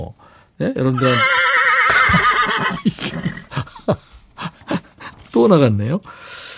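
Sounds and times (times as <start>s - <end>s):
speech: 0.0s - 1.4s, 2.1s - 3.2s, 5.4s - 6.4s
horse whinny: 1.0s - 3.5s
laughter: 1.9s - 5.2s
horse snorts and breathy huffs: 2.0s - 3.7s.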